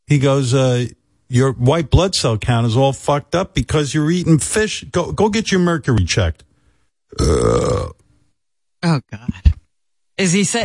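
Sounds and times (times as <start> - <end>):
speech: 0.1 - 6.5, 7.1 - 8.0, 8.8 - 9.6, 10.2 - 10.6
loud drawn-out deep rumbling belch: 7.1 - 8.0.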